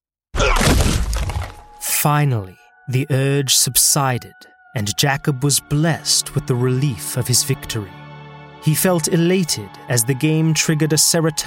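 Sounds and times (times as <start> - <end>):
body crashing to floor: 0.4 - 1.7
speech: 2.0 - 11.4.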